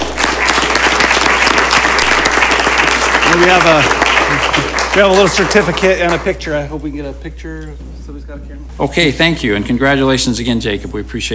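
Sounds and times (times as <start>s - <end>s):
crowd applauding at a city meeting: 0.0s - 6.4s
speech: 3.3s - 4.0s, 5.0s - 11.3s.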